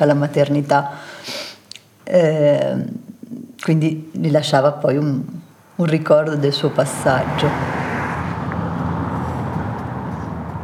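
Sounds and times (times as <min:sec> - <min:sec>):
speech: 0:00.0 - 0:01.4, 0:02.1 - 0:07.8
low rumble of a car in motion heard from inside the cabin: 0:06.2 - 0:10.6.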